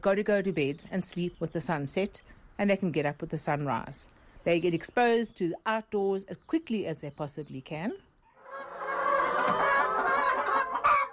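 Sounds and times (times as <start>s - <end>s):
speech: 0.0s - 8.1s
hens clucking in a barn: 8.3s - 11.1s.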